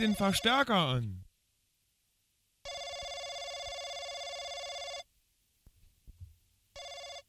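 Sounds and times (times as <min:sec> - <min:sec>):
speech: 0:00.0 - 0:01.2
telephone bell ringing: 0:02.6 - 0:05.1, 0:06.8 - 0:07.2.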